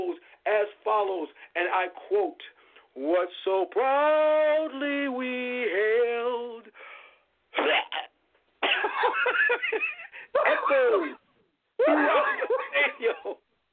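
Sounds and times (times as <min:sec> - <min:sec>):
speech: 0:00.9 - 0:06.7, 0:09.0 - 0:11.2, 0:11.8 - 0:13.4
heavy hacking cough: 0:07.5 - 0:09.5, 0:10.4 - 0:11.1
laughter: 0:08.7 - 0:11.1, 0:11.8 - 0:13.5.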